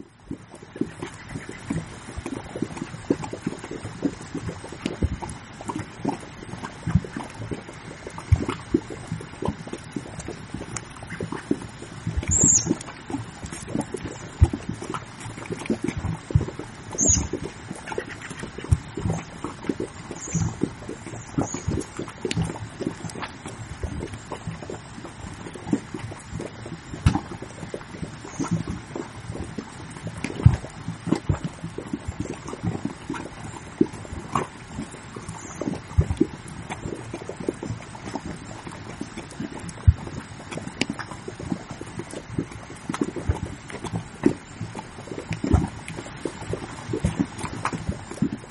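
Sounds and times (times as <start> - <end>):
thick mud bubbling and popping with escaping gas: 0.0 - 48.5.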